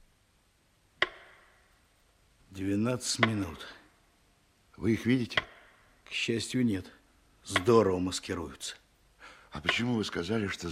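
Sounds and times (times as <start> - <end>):
single sharp clock tick: 1.0 - 1.6, 3.0 - 3.8, 5.2 - 5.7, 7.4 - 7.9, 9.6 - 10.1
speech: 2.6 - 3.8, 4.8 - 5.5, 6.1 - 8.8, 9.5 - 10.6.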